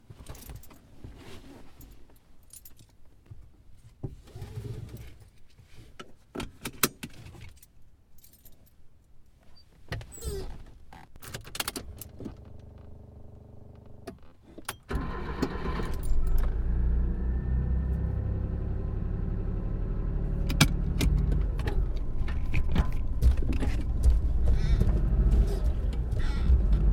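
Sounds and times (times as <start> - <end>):
car starting: 14.9 - 26.9.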